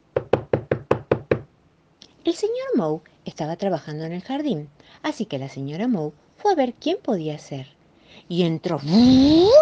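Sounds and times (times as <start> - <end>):
knocking on a wooden door: 0.1 - 1.5
speech: 2.3 - 9.6.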